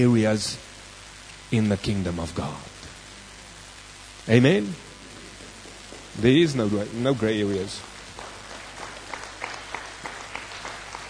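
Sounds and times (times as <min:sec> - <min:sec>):
speech: 0:00.0 - 0:00.7, 0:01.5 - 0:02.7, 0:04.3 - 0:04.9, 0:06.2 - 0:07.9
sparse scattered clapping from a few people: 0:05.1 - 0:06.6, 0:07.4 - 0:11.0.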